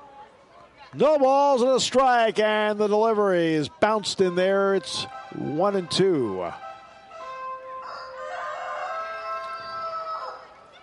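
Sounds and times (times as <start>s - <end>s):
speech: 0.9s - 6.6s
rooster crowing: 7.8s - 10.6s.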